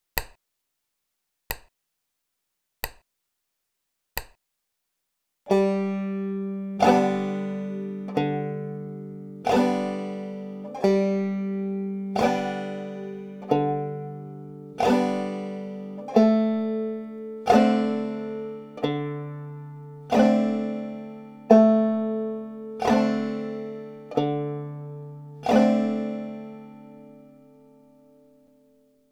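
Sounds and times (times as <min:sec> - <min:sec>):
basic strumming pattern with alternating bass: 0:05.5 - 0:28.4.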